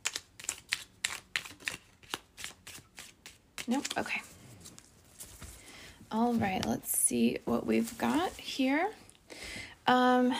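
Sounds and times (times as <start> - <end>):
large deck of cards being shuffled in two sections: 0.0 - 5.5
speech: 3.7 - 4.3, 6.1 - 9.0, 9.9 - 10.3.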